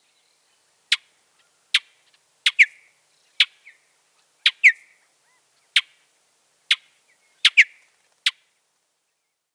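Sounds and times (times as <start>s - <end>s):
mountain bluebird clicking calls: 0.9s - 2.8s, 4.4s - 4.9s, 6.7s - 8.4s.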